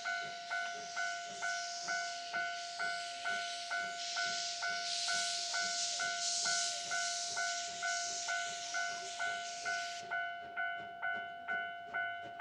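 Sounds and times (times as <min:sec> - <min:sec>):
railway crossing bell ringing: 0:00.0 - 0:12.4
steam train rushing past on the JR Ban'etsu East Line: 0:00.0 - 0:12.4.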